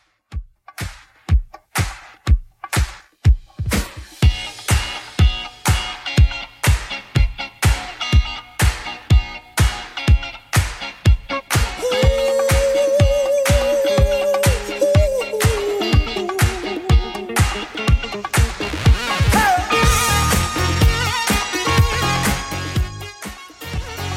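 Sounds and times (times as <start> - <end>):
clean 80s drum machine beat at 123 bpm: 0.0 - 24.1.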